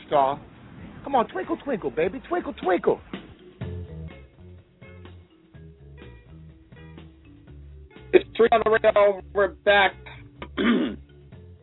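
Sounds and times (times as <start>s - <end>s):
speech: 0.1s - 0.5s, 1.1s - 3.2s, 8.4s - 10.9s
gravelly throat clearing: 10.4s - 11.0s.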